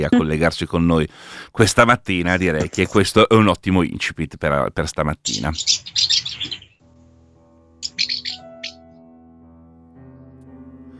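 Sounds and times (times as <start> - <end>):
speech: 0.0 - 6.6
swallows chirping overhead: 5.2 - 6.8, 7.8 - 8.8.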